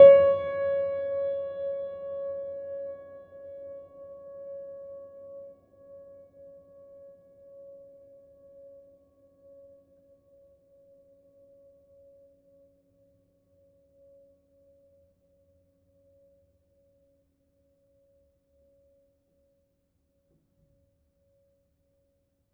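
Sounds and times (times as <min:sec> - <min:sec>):
piano note with pedal: 0:00.0 - 0:03.7.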